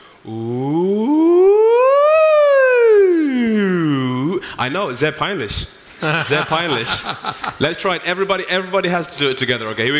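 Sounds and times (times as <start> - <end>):
speech: 0.2 - 0.8, 4.7 - 9.9
voice sliding in pitch in a siren vocal exercise: 0.3 - 4.4
laughter: 6.0 - 7.8.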